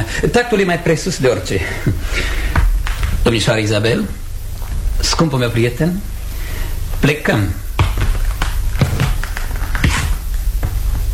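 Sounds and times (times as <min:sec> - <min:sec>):
speech: 0:00.1 - 0:02.5, 0:03.2 - 0:04.2, 0:05.0 - 0:06.1, 0:07.0 - 0:07.6
footsteps walking to a door: 0:02.2 - 0:03.3, 0:04.0 - 0:05.0, 0:07.7 - 0:11.1.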